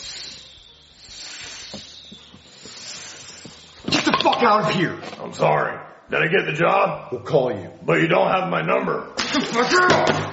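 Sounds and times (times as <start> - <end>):
person imitating a snake's hiss: 0.0 - 4.0
speech: 4.2 - 10.2.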